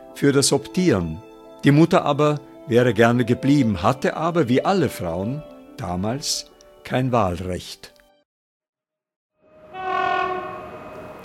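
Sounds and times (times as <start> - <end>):
speech: 0.2 - 8.0
train horn blaring: 9.4 - 11.2
rumble of a moving train: 9.6 - 11.2.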